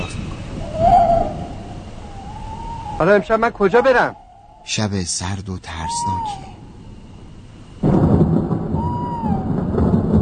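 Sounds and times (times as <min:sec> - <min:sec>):
speech: 0:03.0 - 0:06.6
thunder crack and deep rumble: 0:07.8 - 0:10.1.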